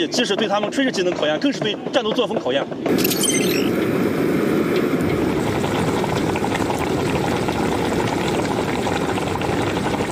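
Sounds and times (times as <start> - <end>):
speech: 0.0 - 4.0
pot of boiling water bubbling while blanching pork: 4.3 - 10.1.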